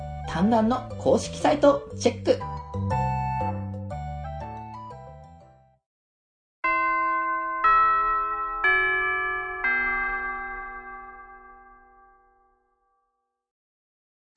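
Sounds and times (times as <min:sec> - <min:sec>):
speech: 0:00.4 - 0:02.6
school bell-like chime melody: 0:06.6 - 0:12.6.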